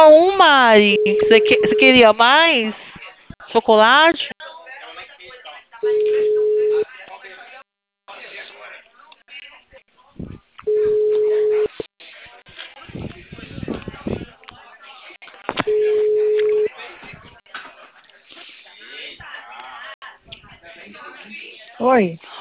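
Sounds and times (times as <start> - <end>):
speech: 0.7 - 2.9, 3.5 - 4.3, 21.8 - 22.3
telephone line beeps after a dropped call: 0.8 - 2.1, 5.8 - 6.8, 10.7 - 11.8, 15.6 - 16.7.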